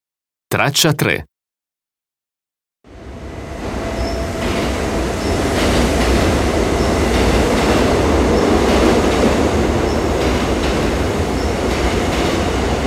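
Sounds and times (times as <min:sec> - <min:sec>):
speech: 0:00.5 - 0:01.3
train rumbling while pulling away from a station: 0:03.0 - 0:12.8.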